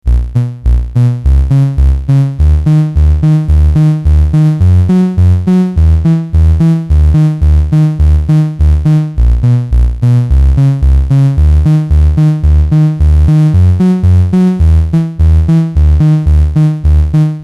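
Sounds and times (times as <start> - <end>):
synth tone shaped by ADSR envelope and VCA: 0.1 - 17.4.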